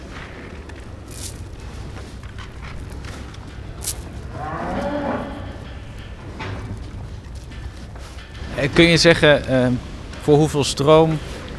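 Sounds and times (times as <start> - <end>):
cows munching extra feed pellets: 0.0 - 11.5
steady barn rustle: 0.0 - 11.5
cow mooing: 4.0 - 6.2
speech: 8.6 - 11.3.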